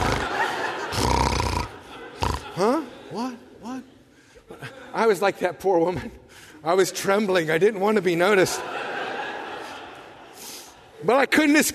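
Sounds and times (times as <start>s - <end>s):
man fake snoring in bed: 0.0s - 2.8s
laughter: 0.0s - 6.2s, 7.9s - 11.7s
speech: 2.6s - 3.9s, 5.0s - 8.8s, 11.0s - 11.7s.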